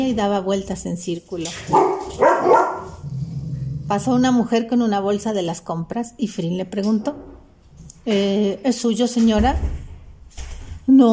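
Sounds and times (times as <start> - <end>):
speech: 0.0 - 2.6, 3.9 - 7.3, 8.0 - 9.8, 10.9 - 11.1
dog barking playfully: 1.7 - 3.0.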